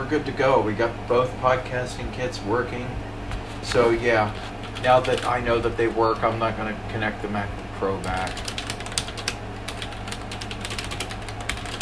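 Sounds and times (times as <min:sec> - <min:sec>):
low hum: 0:00.0 - 0:11.8
speech: 0:00.1 - 0:08.5
typing on mechanical keyboard with MX Brown switches: 0:04.6 - 0:05.4, 0:08.0 - 0:11.8.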